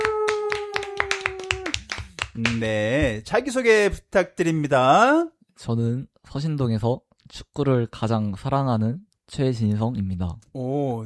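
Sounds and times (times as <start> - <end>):
crowd voicing a held group ooh: 0.0 - 1.9
audience clapping along in a quick rhythm: 0.0 - 3.1
speech: 2.4 - 11.0.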